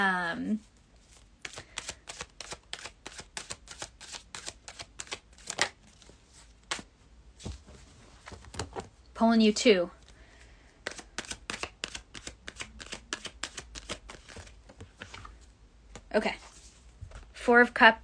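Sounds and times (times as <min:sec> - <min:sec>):
speech: 0:00.0 - 0:00.7, 0:09.2 - 0:10.0, 0:16.2 - 0:16.4, 0:17.5 - 0:18.0
oracle cards being shuffled by hand: 0:01.0 - 0:07.6, 0:10.8 - 0:17.3.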